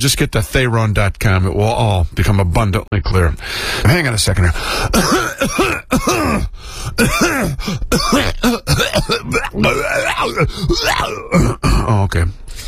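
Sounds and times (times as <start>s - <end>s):
speech: 0.0s - 12.6s
person clearing throat with rough rasps and grunts: 4.9s - 12.1s.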